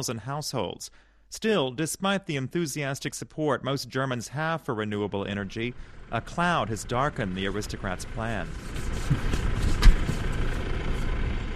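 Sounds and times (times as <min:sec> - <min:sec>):
speech: 0:00.0 - 0:09.4
tractor engine droning: 0:04.2 - 0:11.5
tractor engine knock: 0:05.8 - 0:11.5.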